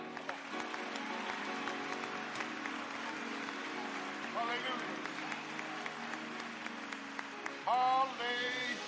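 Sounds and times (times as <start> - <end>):
audience clapping: 0.0 - 8.7
speech: 4.4 - 5.2.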